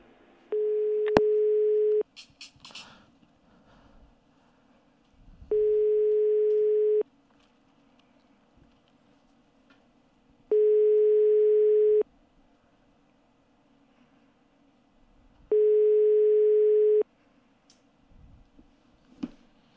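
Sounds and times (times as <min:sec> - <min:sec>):
phone line ringback tone: 0:00.5 - 0:02.0, 0:05.5 - 0:07.0, 0:10.5 - 0:12.0, 0:15.5 - 0:17.0.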